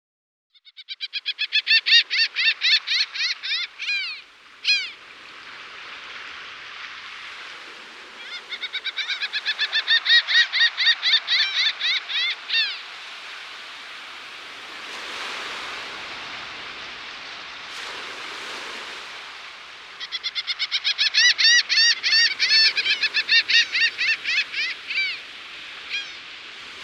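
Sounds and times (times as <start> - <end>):
Laughing Gull calling in Guadeloupe: 0.6 - 5.0, 8.1 - 12.9, 19.9 - 26.2.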